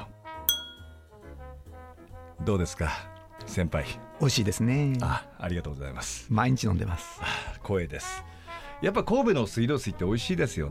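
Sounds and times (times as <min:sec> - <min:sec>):
steady tonal music: 0:00.0 - 0:10.6
glasses clinking in a toast: 0:00.5 - 0:01.1
speech: 0:02.4 - 0:10.6.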